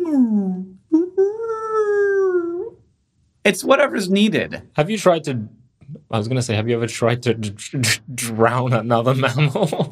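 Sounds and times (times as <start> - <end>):
person vocally imitating a high whale call: 0.0 - 2.8
speech: 3.4 - 9.9
laughter: 9.1 - 9.9.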